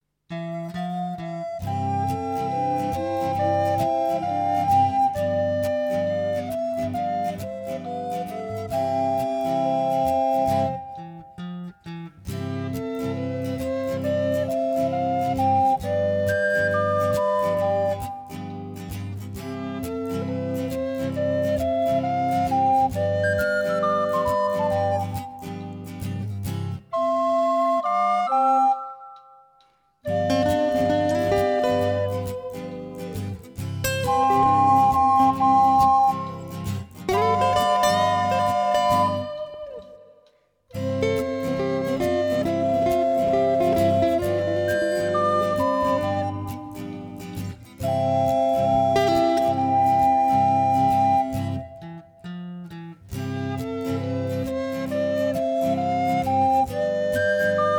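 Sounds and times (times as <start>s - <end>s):
flute player accompaniment: 0.3s - 57.7s.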